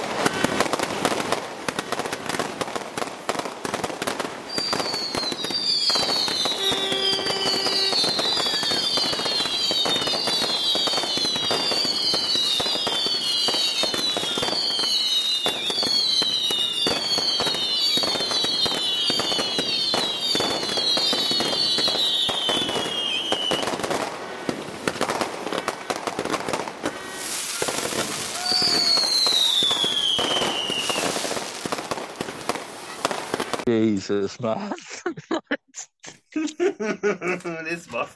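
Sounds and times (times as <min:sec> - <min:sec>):
fireworks crackling and popping: 0:00.0 - 0:36.3
high descending whistles of rockets: 0:04.5 - 0:23.9, 0:26.8 - 0:33.7
speech: 0:34.1 - 0:34.9, 0:36.8 - 0:38.1
laughter: 0:34.4 - 0:37.9.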